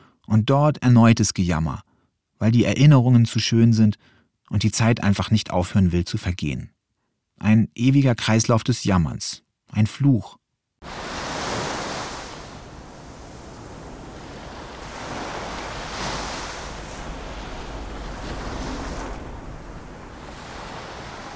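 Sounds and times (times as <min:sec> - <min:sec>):
speech: 0:00.3 - 0:06.7, 0:07.4 - 0:11.0
gusty sea wind roaring across the microphone: 0:10.8 - 0:21.3
waves rolling and breaking on a beach: 0:10.8 - 0:21.3.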